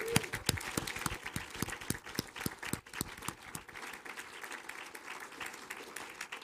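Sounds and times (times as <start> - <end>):
church audience applauding children after a 4th of July program: 0.0 - 6.4.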